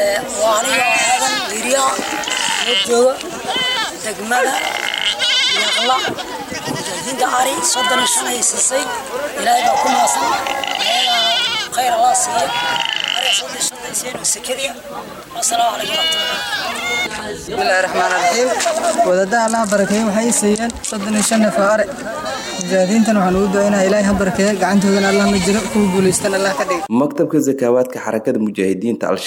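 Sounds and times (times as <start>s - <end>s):
goats and sheep bleating among livestock handed out to poor families: 0.0s - 13.7s, 15.4s - 20.4s, 21.1s - 26.7s
speech: 0.0s - 29.2s.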